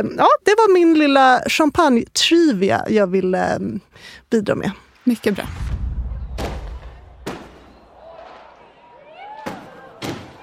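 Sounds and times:
speech: 0.0s - 5.8s
thin whistling trail of fireworks: 4.9s - 8.1s
firework bangs: 4.9s - 10.4s.

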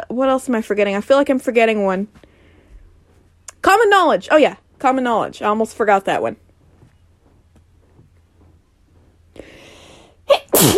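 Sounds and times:
speech: 0.1s - 2.2s, 3.6s - 6.4s
person sneezing: 10.3s - 10.7s.

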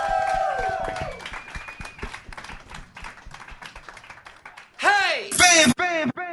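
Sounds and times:
person whooping: 0.0s - 1.3s
small crowd clapping: 0.0s - 5.1s
loud voice: 4.8s - 6.3s.

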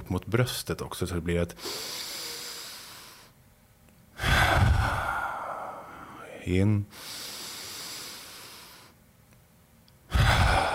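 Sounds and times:
speech: 0.1s - 2.1s, 6.5s - 7.2s
slow deep belly breathing in and out: 1.6s - 3.4s, 4.1s - 9.0s, 10.1s - 10.7s.

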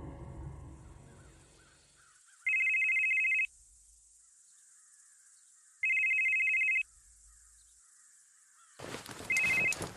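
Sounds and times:
cellphone ringing with an incoming call: 2.5s - 3.5s, 5.9s - 6.9s, 9.3s - 9.8s.

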